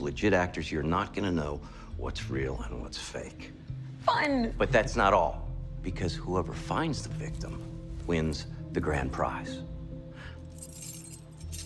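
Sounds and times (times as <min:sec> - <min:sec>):
speech: 0:00.1 - 0:09.7
bunch of car keys jingling and clinking: 0:10.6 - 0:11.6.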